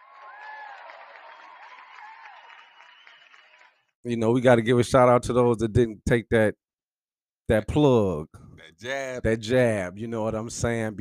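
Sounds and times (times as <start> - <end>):
crowd whoops and cheers: 0.0 - 3.7
audience round of applause: 0.0 - 4.0
speech: 4.0 - 6.6, 7.5 - 10.9.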